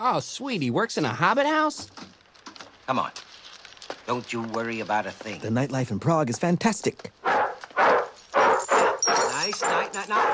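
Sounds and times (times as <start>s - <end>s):
speech: 0.0s - 2.1s, 2.9s - 3.3s, 4.1s - 7.3s, 9.5s - 10.3s
dog barking: 7.2s - 10.3s.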